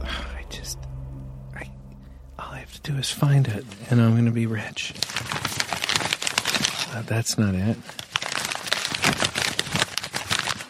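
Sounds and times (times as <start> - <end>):
speech: 2.8 - 5.2, 6.9 - 8.0
big pile of paper being rummaged through: 4.6 - 10.6.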